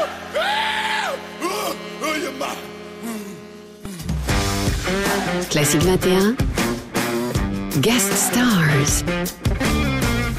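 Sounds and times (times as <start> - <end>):
man letting out loud drawn-out yells: 0.0 - 3.1
steady sustained tone: 0.0 - 9.0
speech: 5.4 - 6.5, 7.7 - 9.7.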